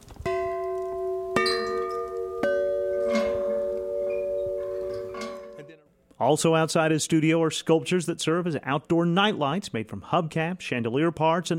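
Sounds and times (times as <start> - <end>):
metal bells struck and ringing: 0.3 - 5.8
speech: 6.2 - 11.5.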